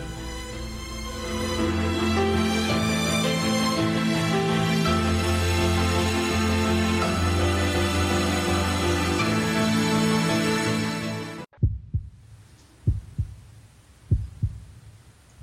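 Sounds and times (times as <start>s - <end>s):
music: 0.0s - 11.5s
heartbeat lub-dub thumps: 11.5s - 15.4s.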